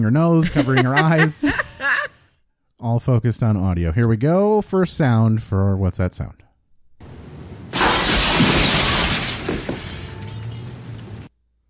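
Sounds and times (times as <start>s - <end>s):
speech: 0.0s - 1.8s, 2.8s - 6.4s
laughter: 0.4s - 2.2s
window glass shattering as someone is thrown through it: 7.7s - 11.3s.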